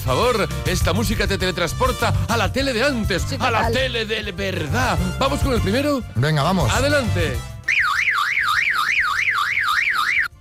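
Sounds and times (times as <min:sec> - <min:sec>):
speech: 0:00.1 - 0:07.5
parrot mimicking a car alarm with a warbling whoop: 0:07.7 - 0:10.3.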